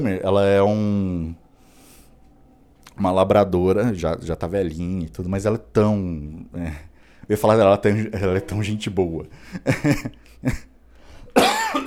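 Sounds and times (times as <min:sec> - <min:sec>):
speech: 0:00.0 - 0:01.4, 0:03.0 - 0:10.7
man with flu coughing: 0:11.3 - 0:11.8.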